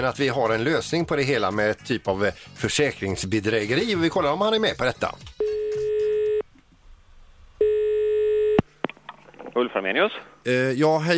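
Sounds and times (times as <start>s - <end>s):
speech: 0.0s - 5.4s, 9.6s - 11.1s
telephone ringback tone: 5.4s - 6.4s, 7.6s - 8.6s.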